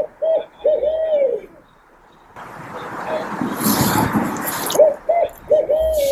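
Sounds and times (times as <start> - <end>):
owl hooting in a forest at night: 0.0 - 6.1
rustling: 0.0 - 6.1
heavy breathing: 3.4 - 6.1.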